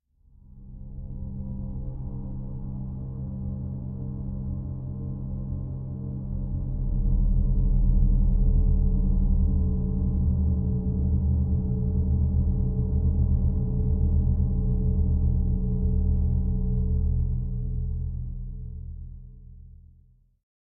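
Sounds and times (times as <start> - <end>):
low end sub drone pad for suspense: 0.7 - 19.8.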